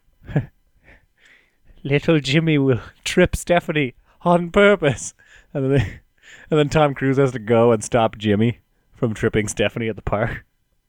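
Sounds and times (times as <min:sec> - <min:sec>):
speaker imitating a gasp: 0:00.2 - 0:01.4
speech: 0:00.4 - 0:00.6, 0:01.8 - 0:10.5.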